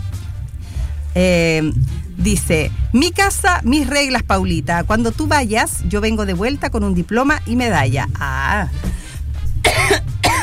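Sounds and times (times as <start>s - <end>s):
speech: 1.2s - 9.0s
short vocal sound: 1.7s - 2.2s
person coughing fit: 9.7s - 10.4s.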